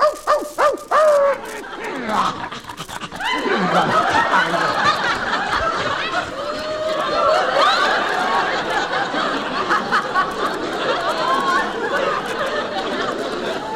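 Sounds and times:
female dog barking: 0.0s - 1.4s
laughter and chatter: 0.0s - 13.7s.

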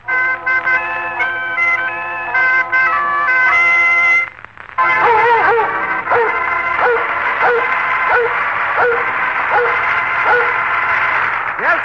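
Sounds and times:
sustained organ-like tones: 0.0s - 11.8s
dog barking: 5.0s - 10.6s.

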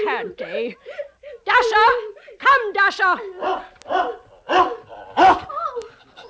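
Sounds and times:
speech: 0.2s - 1.0s, 2.6s - 4.0s
dog barking: 3.4s - 5.5s.

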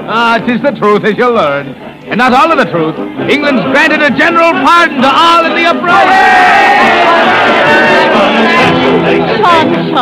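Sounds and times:
speech: 0.1s - 10.0s
large crowd of Irishmen and English soldiers cheering and shouting: 4.3s - 9.8s.

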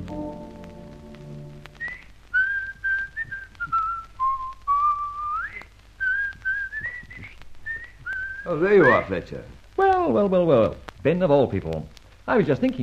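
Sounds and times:
man whistling a melodic theme song: 1.8s - 8.6s
speech: 9.1s - 9.6s, 10.1s - 12.8s.

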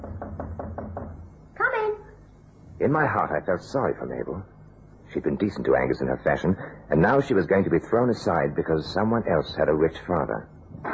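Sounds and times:
knocking on an apartment door: 0.0s - 1.3s
speech: 2.8s - 4.5s, 5.1s - 10.8s.

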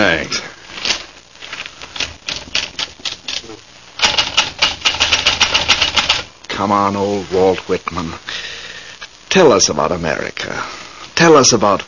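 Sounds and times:
speech: 0.1s - 0.6s, 6.6s - 8.4s, 9.3s - 11.8s
manual typewriter typing: 2.0s - 6.3s.

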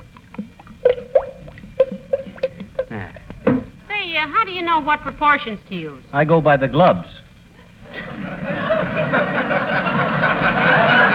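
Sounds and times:
faint watery slosh: 0.0s - 3.5s
thick paint glugging as it is poured: 0.0s - 3.8s
speech: 4.2s - 7.2s
laughter: 7.6s - 11.1s.

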